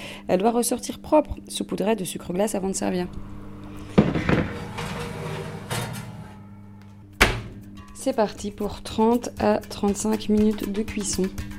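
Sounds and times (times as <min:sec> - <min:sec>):
speech: 0:00.3 - 0:03.4, 0:08.0 - 0:11.5
clafoutis dish slid into an oven with metallic clunks: 0:03.9 - 0:07.6.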